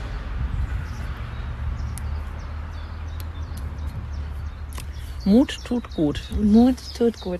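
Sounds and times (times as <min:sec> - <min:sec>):
birds chirping outdoors by a moat: 0:00.0 - 0:07.3
speech: 0:05.2 - 0:07.3.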